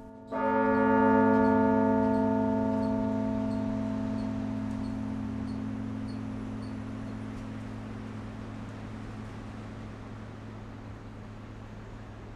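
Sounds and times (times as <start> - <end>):
large carillon bell struck in a belfry bell chamber: 0.0 - 8.6.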